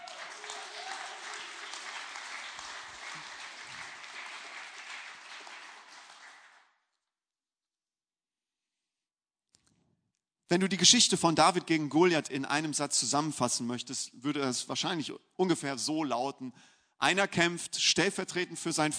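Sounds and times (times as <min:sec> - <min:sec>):
crowd applauding: 0:00.0 - 0:06.7
speech: 0:10.5 - 0:18.9.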